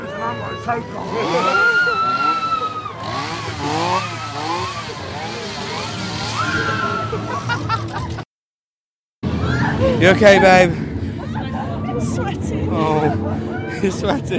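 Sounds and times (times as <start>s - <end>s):
laughter: 0.0s - 8.3s, 9.5s - 14.3s
speech: 0.3s - 1.8s, 10.0s - 10.8s, 12.0s - 14.3s
chainsaw engine revving: 1.0s - 8.2s.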